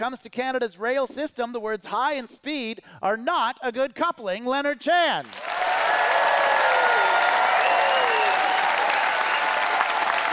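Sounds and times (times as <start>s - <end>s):
speech: 0.0s - 5.4s
audience members cheering: 5.3s - 10.3s
large debate audience applause: 5.3s - 10.3s.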